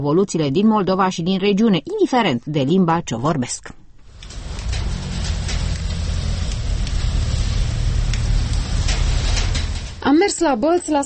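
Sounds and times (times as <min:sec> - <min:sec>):
speech: 0:00.0 - 0:03.8, 0:10.0 - 0:11.0
low rumble, possibly traffic: 0:04.0 - 0:10.2
heavy rain falling: 0:04.0 - 0:10.4.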